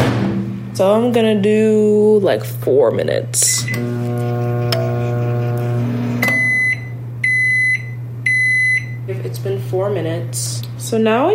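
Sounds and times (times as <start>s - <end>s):
speech: 0.8s - 5.1s, 9.7s - 11.3s
microwave oven heating noodles in a dish of water humming: 1.5s - 11.3s
microwave oven keypad beeping: 6.2s - 9.0s.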